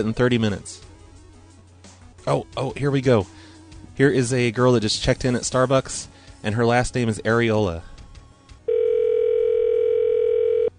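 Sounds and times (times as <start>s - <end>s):
speech: 0.0s - 0.9s, 2.3s - 3.4s, 4.0s - 7.9s
telephone dial tone while placing a call: 8.7s - 10.7s.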